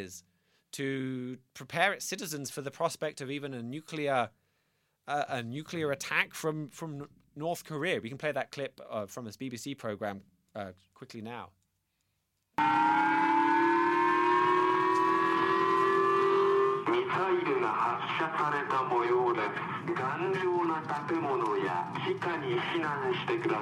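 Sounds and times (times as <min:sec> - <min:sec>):
speech: 0:00.0 - 0:04.4, 0:05.1 - 0:11.6, 0:12.6 - 0:13.3, 0:16.9 - 0:23.6
civil defense air raid siren blaring: 0:12.6 - 0:23.6.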